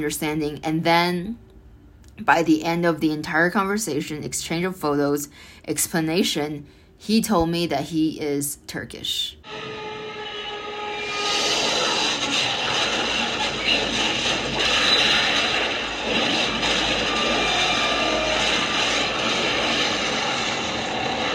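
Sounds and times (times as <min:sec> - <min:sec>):
speech: 0:00.0 - 0:01.5, 0:02.2 - 0:09.8
airplane crashing sound effect engine roar: 0:09.5 - 0:21.3.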